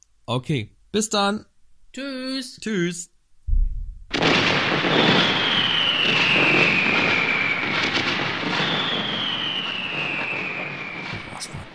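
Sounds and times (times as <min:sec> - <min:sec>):
speech: 0:00.3 - 0:03.1
loud firework bang at the house: 0:03.5 - 0:11.7
roaring hiss with a high whine falling in pitch: 0:04.1 - 0:11.7.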